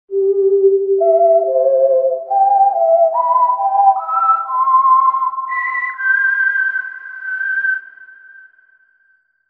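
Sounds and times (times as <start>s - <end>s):
person whistling: 0.2s - 8.8s.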